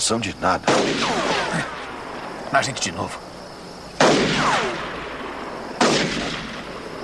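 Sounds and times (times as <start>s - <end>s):
speech: 0.1s - 1.8s, 2.5s - 3.3s
gunshots fired wildly: 0.6s - 2.0s, 4.0s - 7.0s.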